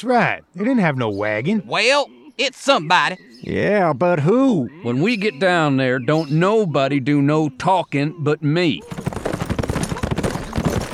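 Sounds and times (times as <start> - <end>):
speech: 0.0 - 9.0
hoofbeats of riders' horses approaching at speed: 8.8 - 10.9.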